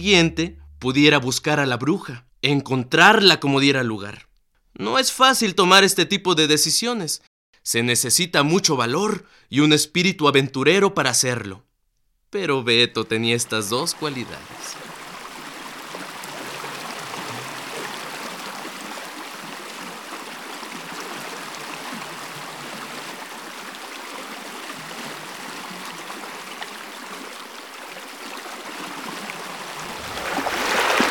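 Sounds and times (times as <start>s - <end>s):
speech: 0.0s - 11.7s, 12.3s - 14.8s
flowing river water rushing and burbling: 14.0s - 31.0s.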